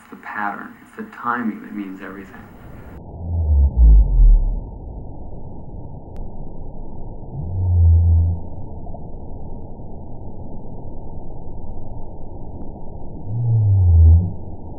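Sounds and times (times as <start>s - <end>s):
speech: 0.4s - 2.6s
blue or fin whale song with deep rumbling moans: 2.8s - 5.2s, 7.2s - 8.9s, 13.0s - 14.7s.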